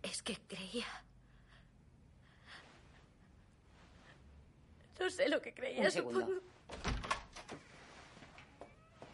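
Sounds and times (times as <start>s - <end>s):
speech: 0.3s - 1.1s, 5.0s - 6.9s
door opening: 6.7s - 9.1s.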